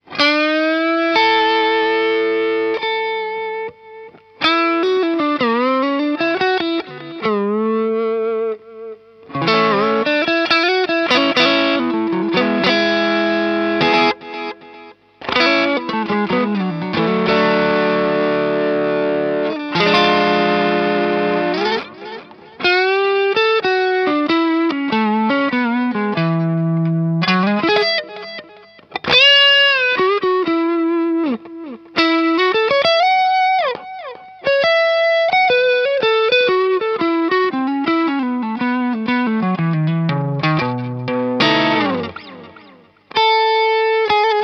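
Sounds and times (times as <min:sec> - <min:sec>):
electric guitar with dynamic delay effect: 0:00.0 - 0:44.4.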